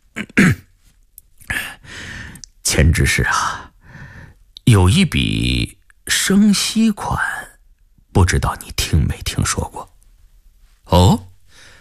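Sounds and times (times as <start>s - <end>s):
man clearing his throat: 0.1s - 0.7s
man coughing: 0.2s - 0.7s
speech: 2.7s - 3.6s, 4.7s - 7.4s, 8.2s - 9.9s.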